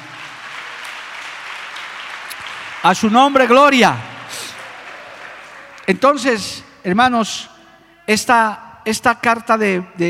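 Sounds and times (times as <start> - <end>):
crowd applauding: 0.0 - 6.3
speech: 2.8 - 4.1, 5.9 - 7.5, 8.1 - 10.0.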